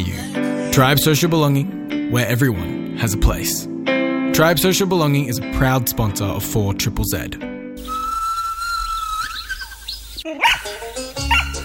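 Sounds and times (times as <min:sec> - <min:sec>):
speech: 0:00.8 - 0:03.7, 0:04.4 - 0:07.5
long steady whistle: 0:07.8 - 0:09.7
dog barking excitedly with high-pitched barks and yips: 0:10.4 - 0:11.6.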